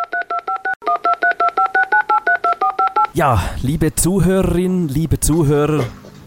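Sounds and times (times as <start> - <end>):
telephone keypad dialing tones: 0.0 - 3.1
speech: 3.2 - 6.0.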